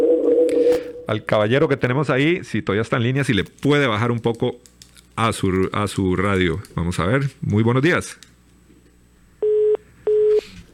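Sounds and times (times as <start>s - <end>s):
speech: 1.1s - 8.3s
busy tone on a dropped telephone call: 9.4s - 10.4s.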